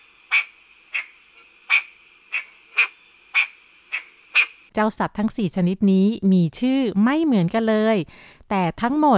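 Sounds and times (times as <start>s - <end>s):
small frog calling: 0.0s - 4.7s
speech: 4.8s - 9.1s.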